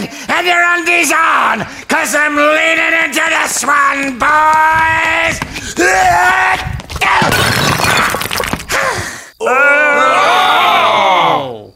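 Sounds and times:
speech: 0.4s - 8.0s, 9.4s - 10.7s
skull headpiece shattered by a hockey slapshot: 7.2s - 8.8s.

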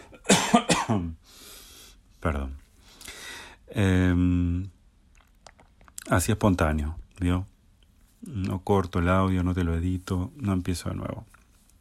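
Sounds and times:
person coughing: 0.0s - 1.2s
speech: 2.2s - 2.6s, 3.7s - 4.8s, 6.1s - 7.5s, 8.2s - 11.4s.

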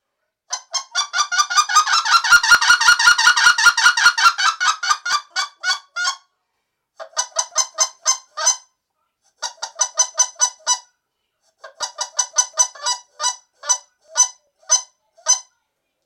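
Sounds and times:
goose call single-cut clucks: 0.5s - 6.2s, 7.0s - 8.7s, 9.4s - 10.9s, 11.6s - 15.5s.

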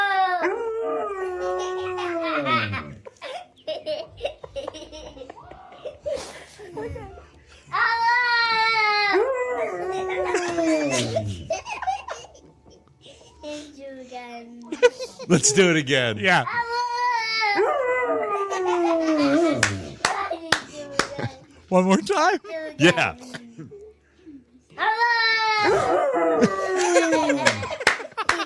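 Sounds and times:
dog howling in long rising and falling wails: 0.0s - 3.0s, 7.9s - 11.3s, 17.3s - 20.1s, 24.8s - 27.7s
laughter: 1.4s - 7.2s, 10.0s - 12.9s, 18.3s - 20.4s, 26.4s - 28.4s
speech: 15.4s - 16.6s, 21.7s - 23.3s.

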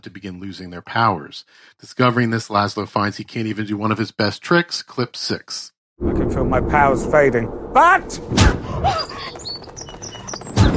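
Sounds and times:
speech: 0.0s - 9.5s
sparrow chirping: 8.8s - 10.7s.

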